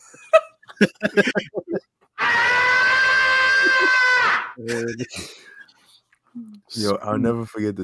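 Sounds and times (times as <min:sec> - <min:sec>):
brief laughter-like sounds: 0:00.0 - 0:02.0, 0:04.6 - 0:05.6
speech: 0:00.8 - 0:01.6, 0:04.7 - 0:05.6, 0:06.7 - 0:07.8
man screaming during a bear attack: 0:02.2 - 0:04.6.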